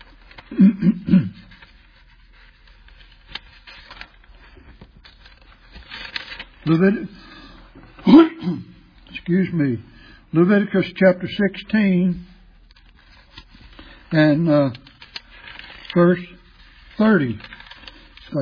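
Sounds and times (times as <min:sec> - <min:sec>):
speech: 0:00.5 - 0:01.2, 0:06.7 - 0:07.2, 0:08.0 - 0:08.7, 0:09.3 - 0:12.3, 0:14.1 - 0:14.8, 0:15.9 - 0:16.4, 0:17.0 - 0:17.5
throat clearing from something stuck in the throat: 0:00.5 - 0:01.5.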